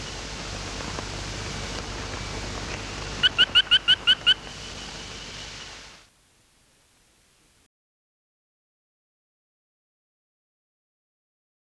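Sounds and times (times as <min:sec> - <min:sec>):
Fry's frog Austrochaperina fryi calling: 0:00.0 - 0:06.1
hissing background noise: 0:00.0 - 0:07.6.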